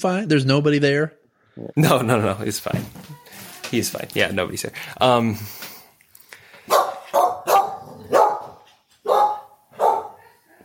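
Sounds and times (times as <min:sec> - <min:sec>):
speech: 0:00.0 - 0:05.7
dog barking: 0:06.7 - 0:10.4.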